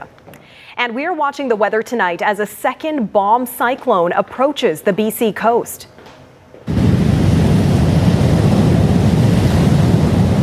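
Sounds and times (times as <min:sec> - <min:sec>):
speech: 0:00.7 - 0:05.9
heavy ocean surf crashing against a rocky shore: 0:06.7 - 0:10.4.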